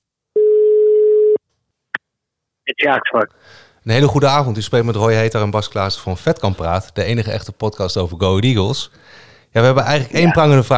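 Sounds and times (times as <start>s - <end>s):
telephone ringing tone while placing a call: 0.4s - 1.4s
speech: 2.7s - 10.7s.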